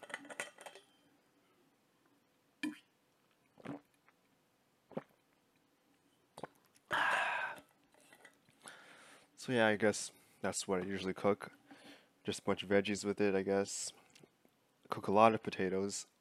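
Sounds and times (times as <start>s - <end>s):
person sipping water: 3.5s - 4.3s, 4.9s - 5.4s, 6.4s - 8.4s
slurping gulp: 3.6s - 3.9s, 4.9s - 5.2s
speech: 9.5s - 11.6s, 12.2s - 14.0s, 14.9s - 16.1s.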